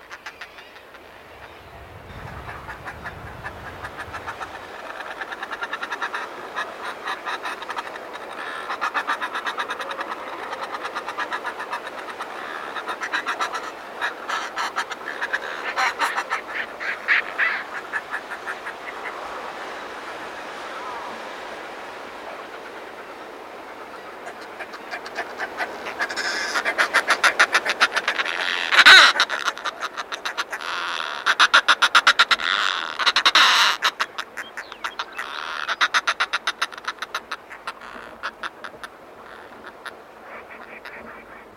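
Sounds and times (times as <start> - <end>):
northern fulmars cackling and croaking on cliff ledges: 0.0 - 41.5.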